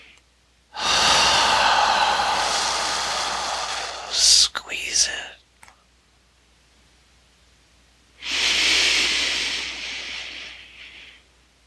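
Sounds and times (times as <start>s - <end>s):
deep inhale through the nose during a guided breathing exercise: 0.8s - 4.4s, 8.2s - 11.3s.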